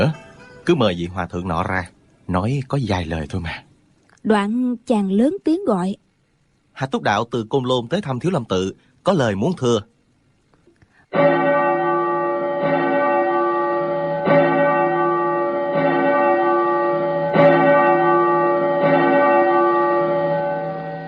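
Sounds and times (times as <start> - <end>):
speech: 0.0 - 6.0, 6.8 - 9.9
large temple bells ringing at a Buddhist monastery in the mountains: 11.1 - 21.0.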